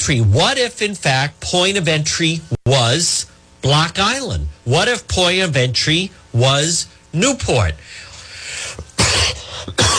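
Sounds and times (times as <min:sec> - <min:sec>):
speech: 0:00.0 - 0:08.0
person coughing close to the microphone: 0:08.8 - 0:09.9.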